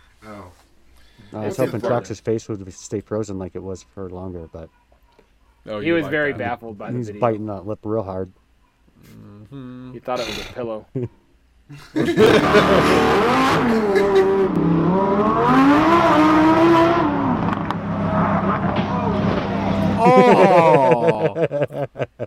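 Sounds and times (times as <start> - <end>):
speech: 1.3 - 4.8, 5.6 - 8.4, 9.0 - 15.8, 20.2 - 21.7
laughter: 11.7 - 14.5, 19.8 - 22.2
car engine revving and accelerating: 12.2 - 20.1.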